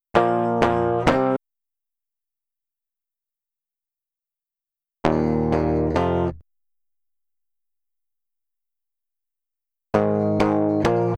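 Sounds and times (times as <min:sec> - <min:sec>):
guitar recorded direct: 0:00.1 - 0:01.4, 0:05.0 - 0:06.4, 0:10.0 - 0:11.1.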